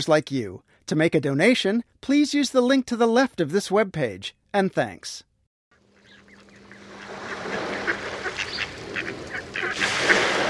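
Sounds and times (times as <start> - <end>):
speech: 0.0 - 5.3
migrating mallard ducks quacking in a front yard on Long Island Sound: 5.8 - 10.4
steady outdoor hiss: 5.8 - 10.4.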